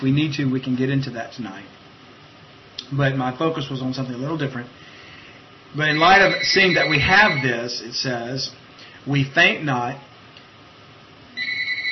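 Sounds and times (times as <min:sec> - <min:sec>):
speech: 0:00.0 - 0:01.8, 0:02.9 - 0:04.9, 0:05.7 - 0:10.1
faint noise: 0:00.0 - 0:11.9
phone ringing: 0:05.9 - 0:07.5, 0:11.4 - 0:11.9.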